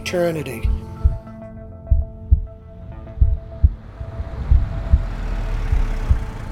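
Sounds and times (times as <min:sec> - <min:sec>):
speech: 0:00.1 - 0:00.8
slow heartbeat thumping in lub-dub pairs: 0:00.6 - 0:06.5
droning hum: 0:01.9 - 0:06.5.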